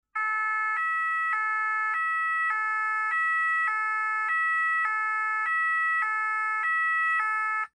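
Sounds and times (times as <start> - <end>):
ambulance siren in France: 0.1 - 7.7.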